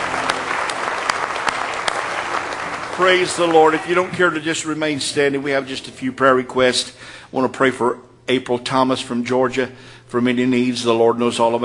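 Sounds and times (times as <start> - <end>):
church congregation clapping hands in praise: 0.0 - 4.9
speech: 3.0 - 11.6.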